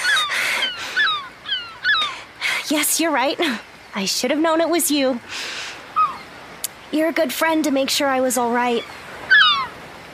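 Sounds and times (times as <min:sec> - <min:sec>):
seagull squawking: 0:00.0 - 0:02.3, 0:06.0 - 0:06.3, 0:08.7 - 0:09.8
speech: 0:02.7 - 0:05.5, 0:06.9 - 0:09.0.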